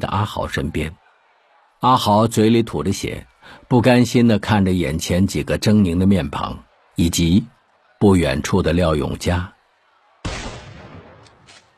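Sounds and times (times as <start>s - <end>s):
speech: 0.0s - 1.0s, 1.8s - 9.6s
gunshot with decaying rumble: 10.2s - 11.5s.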